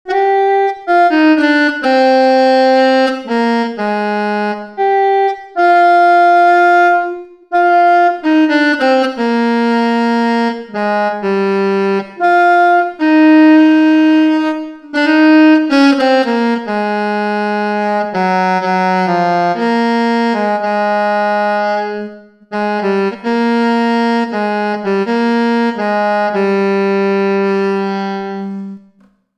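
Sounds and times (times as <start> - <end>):
alto saxophone, travel sax: 0.0 - 29.2.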